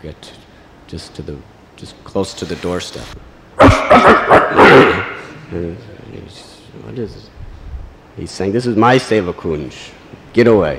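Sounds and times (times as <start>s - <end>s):
speech: 0.0s - 7.4s, 8.2s - 10.7s
voice imitating dogs barking: 3.6s - 5.4s.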